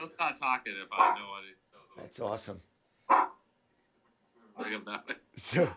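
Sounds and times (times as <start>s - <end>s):
speech: 0.4s - 3.3s, 4.6s - 5.7s
single short sharp dog bark: 1.0s - 1.2s, 3.1s - 3.4s.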